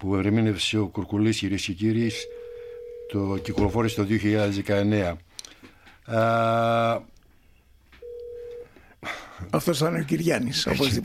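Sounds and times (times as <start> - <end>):
speech: 0.0 - 2.4, 3.1 - 5.3, 6.1 - 7.1, 9.0 - 11.0
telephone ringing: 1.9 - 4.8, 8.0 - 8.8.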